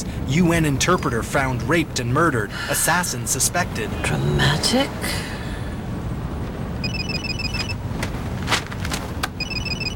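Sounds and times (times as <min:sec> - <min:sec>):
Mercedes road and engine rumble: 0:00.0 - 0:09.9
speech: 0:00.3 - 0:05.4
phone with caller ID ringing in a Mercedes: 0:06.8 - 0:07.9, 0:09.4 - 0:09.9.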